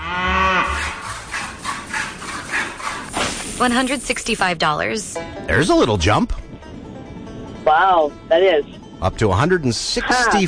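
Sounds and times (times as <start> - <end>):
short low cow moo: 0.0 - 2.9
rhythmic rasping strokes: 0.0 - 10.4
speech: 3.6 - 6.4, 7.7 - 10.4.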